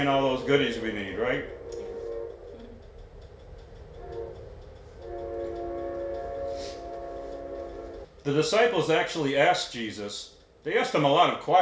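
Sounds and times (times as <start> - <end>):
speech: 0.0 - 1.6, 8.2 - 11.6
train horn blaring: 0.0 - 8.2
train rumbling past: 0.0 - 11.6.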